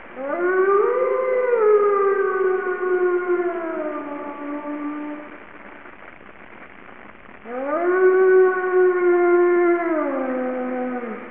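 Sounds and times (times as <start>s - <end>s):
wolf howling with long rich harmonic howls: 0.2s - 5.4s, 7.5s - 11.2s.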